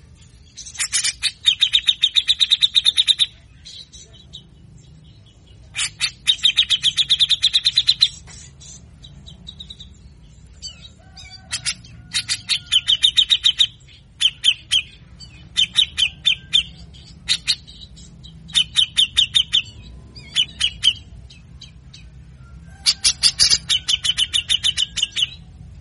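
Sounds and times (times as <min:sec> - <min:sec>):
Grey-cheeked Bulbul singing harsh rasping notes: 0:00.0 - 0:25.8.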